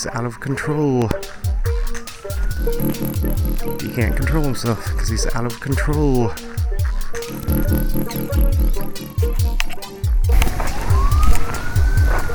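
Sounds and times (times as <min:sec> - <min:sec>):
speech: 0:00.0 - 0:01.5, 0:02.6 - 0:06.6, 0:07.2 - 0:09.9
loud siren wailing in rising and falling sweeps: 0:00.4 - 0:12.3
steady pulsing low thump: 0:01.5 - 0:12.3.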